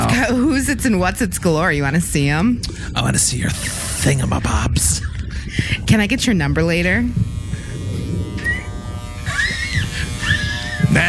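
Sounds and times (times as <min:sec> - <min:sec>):
electric toothbrush buzzing hum: 0:00.0 - 0:11.0
speech: 0:00.3 - 0:07.3
higher-pitched whines of electric toothbrush: 0:06.8 - 0:11.0.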